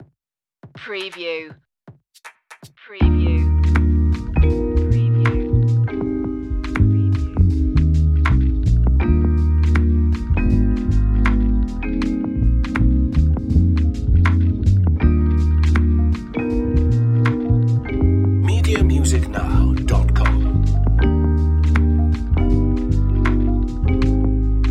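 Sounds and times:
warm chill jazzy music: 0:03.0 - 0:24.6.

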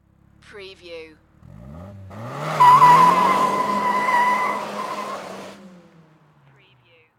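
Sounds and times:
Nissan Silvia exhaust on takeoff: 0:01.2 - 0:06.6.

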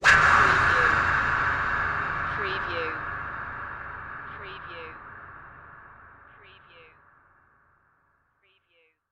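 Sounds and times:
wispy hit: 0:00.0 - 0:08.2.

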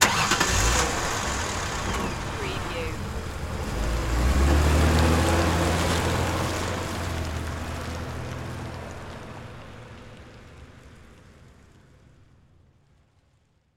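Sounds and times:
car engine auto start: 0:00.0 - 0:10.8
car driving off: 0:00.0 - 0:12.3.

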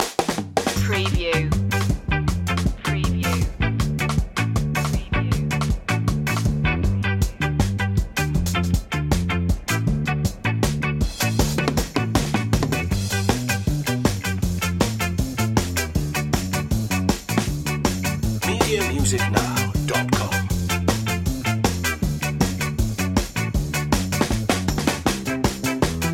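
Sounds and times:
ska music without horns or organ: 0:00.0 - 0:26.1.

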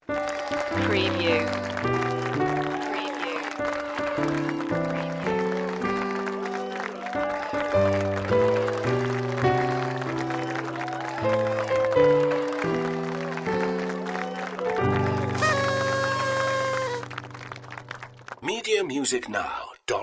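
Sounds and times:
easy birthday song on piano: 0:00.0 - 0:18.4
party applause: 0:00.0 - 0:19.1
party horn toot: 0:15.2 - 0:17.2.

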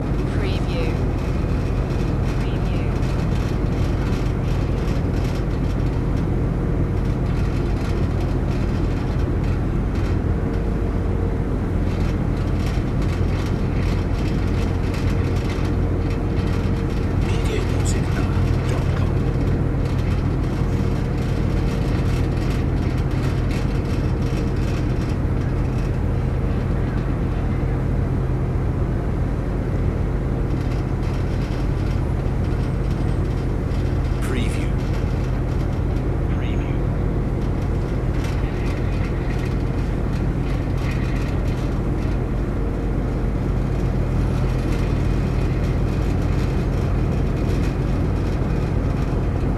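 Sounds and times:
ferry ride ambience: 0:00.0 - 0:49.5.

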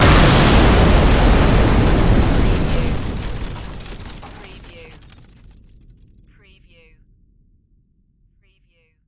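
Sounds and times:
large explosion blast with debris: 0:00.0 - 0:06.2.

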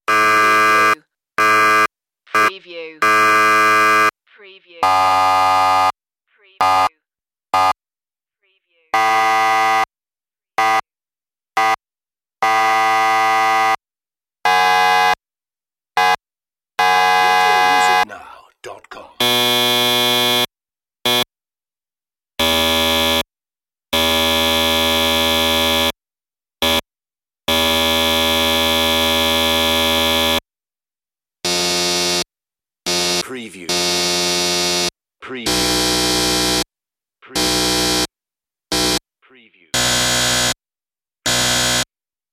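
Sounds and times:
buzzers: 0:00.0 - 0:04.2, 0:04.8 - 0:06.0, 0:06.6 - 0:07.8, 0:09.0 - 0:09.9, 0:10.6 - 0:10.9, 0:11.6 - 0:11.8, 0:12.4 - 0:13.8, 0:14.4 - 0:15.2, 0:16.0 - 0:16.2, 0:16.8 - 0:18.0, 0:19.2 - 0:21.3, 0:22.4 - 0:23.3, 0:23.9 - 0:26.0, 0:26.6 - 0:26.9, 0:27.5 - 0:30.4, 0:31.4 - 0:36.7, 0:37.3 - 0:38.1, 0:38.7 - 0:39.0, 0:39.8 - 0:40.6, 0:41.2 - 0:41.9.

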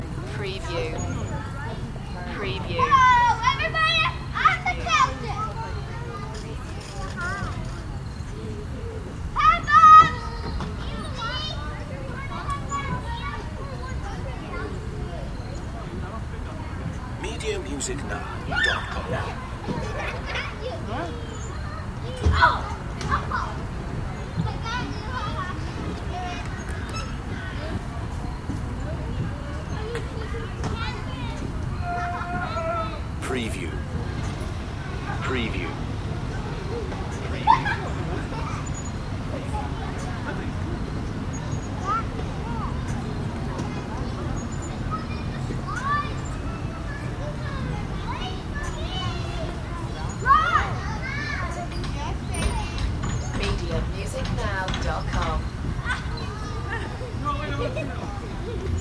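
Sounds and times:
kids at a playground: 0:00.0 - 0:58.7.

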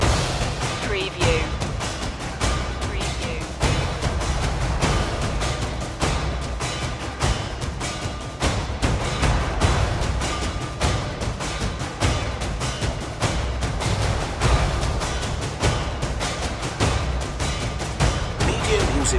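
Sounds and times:
epic hymn percussion loop: 0:00.0 - 0:19.1.

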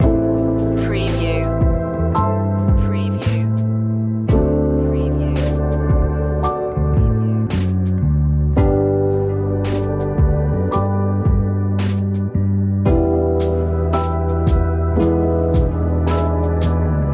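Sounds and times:
peaceful music loop: 0:00.0 - 0:17.1.

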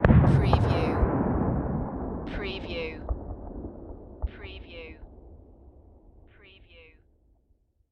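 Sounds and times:
distant bomb explosion: 0:00.0 - 0:06.2.

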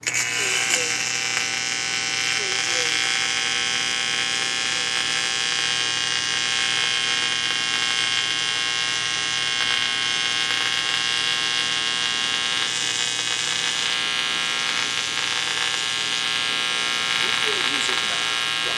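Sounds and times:
welder running: 0:00.0 - 0:18.7.

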